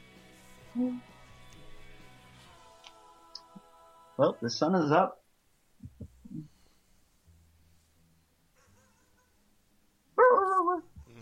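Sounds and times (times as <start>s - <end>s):
speech: 0.8s - 1.1s, 4.2s - 5.2s
pet dog barking: 10.2s - 10.8s.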